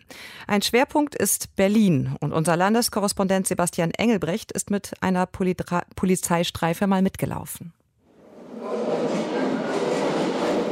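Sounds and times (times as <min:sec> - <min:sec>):
speech: 0:00.5 - 0:07.8
train rumbling through the Osloer Straße underground station in Berlin: 0:08.2 - 0:10.7.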